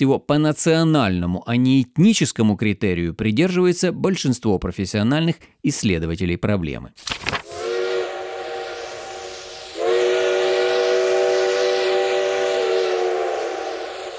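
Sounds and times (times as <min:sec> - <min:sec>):
speech: 0:00.0 - 0:07.4
steam whistle of a long train departing a small halt on the Trans-Siberian Railway: 0:07.3 - 0:14.1.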